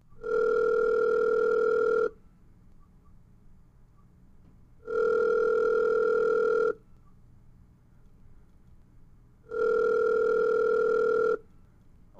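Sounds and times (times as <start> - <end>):
telephone line dial tones as a call is dialed: 0.2 - 2.2, 4.9 - 6.8, 9.5 - 11.5.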